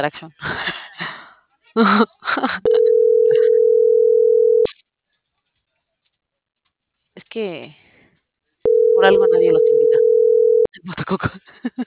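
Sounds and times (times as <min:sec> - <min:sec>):
speech: 0:00.0 - 0:00.8, 0:01.8 - 0:02.6, 0:07.4 - 0:07.8, 0:10.9 - 0:11.8
telephone line tone of an unanswered call: 0:02.7 - 0:04.7, 0:08.7 - 0:10.7.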